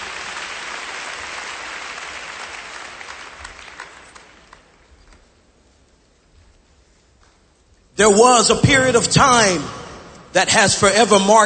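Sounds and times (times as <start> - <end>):
seated audience clapping hands: 0.0 - 5.4
speech: 8.0 - 11.4.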